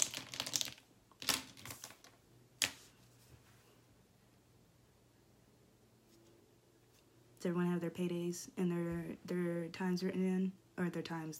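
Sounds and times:
sheet of paper for notes rustling and crinkling: 0.0 - 3.5
speech: 7.4 - 11.3.

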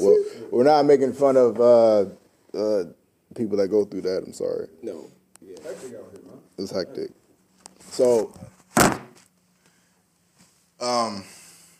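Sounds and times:
speech: 0.0 - 7.2, 7.9 - 9.0, 10.8 - 11.4
phone slammed down with a heavy thunk: 8.7 - 9.2.

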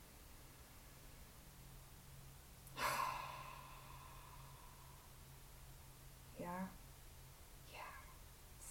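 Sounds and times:
slow deep breath drawn close to the microphone: 2.7 - 5.3
speech: 6.4 - 6.8.

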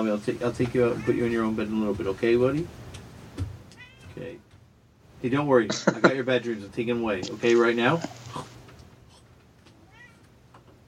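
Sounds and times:
speech: 0.0 - 2.8, 4.2 - 4.5, 5.2 - 8.6
cat meowing: 3.7 - 4.4, 9.8 - 10.3
laughter: 5.7 - 6.3.

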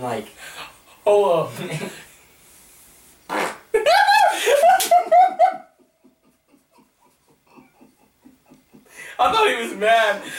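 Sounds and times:
speech: 0.0 - 2.1, 9.2 - 10.3
faint hissing: 0.0 - 5.3, 6.0 - 10.3
fart: 3.3 - 3.7
laughter: 3.8 - 9.5.

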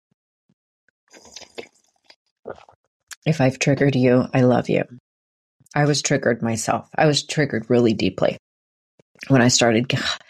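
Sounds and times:
person sipping and slurping tea: 1.1 - 2.8
swallowing: 1.1 - 2.8
speech: 2.5 - 5.0, 5.7 - 8.4, 9.2 - 10.2.

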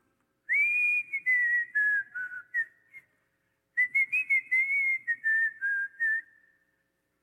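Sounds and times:
person whistling a melody: 0.5 - 3.1, 3.8 - 6.7.

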